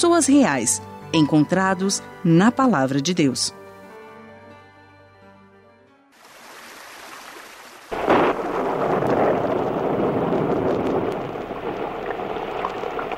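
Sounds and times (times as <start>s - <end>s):
speech: 0.0s - 3.6s
heavy rain hissing: 6.2s - 13.1s
thunderstorm thunder crack rolling into a deep rumble: 7.9s - 13.1s.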